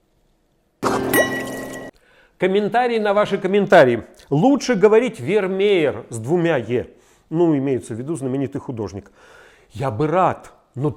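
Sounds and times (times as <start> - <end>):
White Burgundy wine pouring into a glass: 0.8 - 1.9
speech: 2.4 - 10.9.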